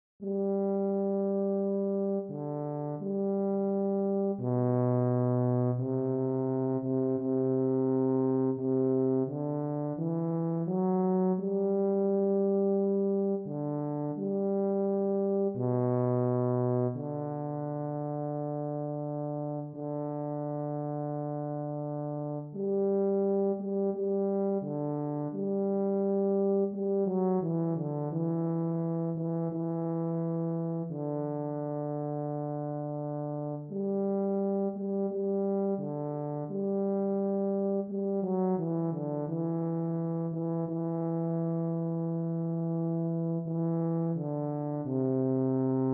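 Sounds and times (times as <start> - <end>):
trombone playing slow foxtrot: 0.2 - 45.9.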